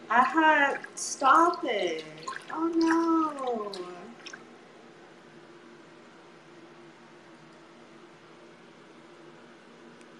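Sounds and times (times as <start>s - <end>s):
speech: 0.1s - 4.0s
water pouring or running in a steady hiss: 0.6s - 4.5s.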